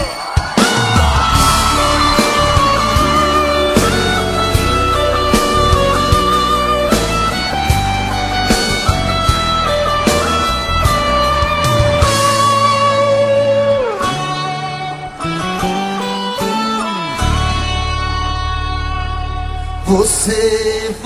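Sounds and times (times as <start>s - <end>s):
crowd yelling and whooping: 0.0s - 12.8s
live band with drum hits and sustained instruments: 0.0s - 19.9s
speech: 20.0s - 21.0s.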